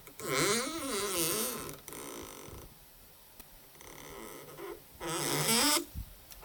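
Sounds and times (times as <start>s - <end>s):
old shoelace rubbed between finger and thumb against a wooden door: 0.2s - 2.6s, 3.8s - 5.9s.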